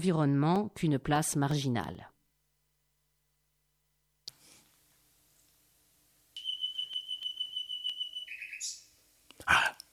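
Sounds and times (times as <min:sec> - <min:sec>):
speech: 0:00.0 - 0:02.1
common nightingale singing: 0:06.4 - 0:09.9.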